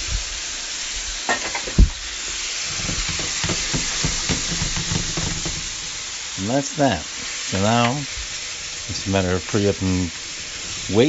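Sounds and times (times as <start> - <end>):
tomatoes sizzling in a hot pan of gumbo base: 0.0 - 11.0
thump: 1.7 - 2.0, 2.8 - 5.8
soft stirring clatters in a gumbo pan: 2.7 - 6.0
speech: 6.4 - 8.2, 8.9 - 10.2, 10.9 - 11.0.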